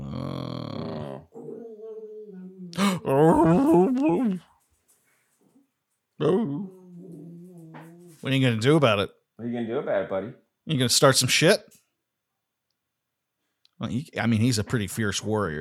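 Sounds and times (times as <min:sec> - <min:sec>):
dog growling: 0:00.0 - 0:04.4, 0:06.2 - 0:08.3
speech: 0:02.8 - 0:04.5, 0:06.2 - 0:06.7, 0:08.2 - 0:11.8, 0:13.8 - 0:15.5.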